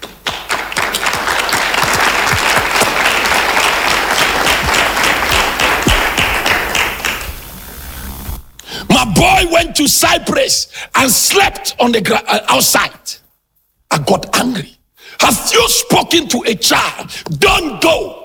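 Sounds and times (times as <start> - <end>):
crowd applause: 0.0 - 8.0
speech: 9.3 - 13.2, 13.9 - 18.2.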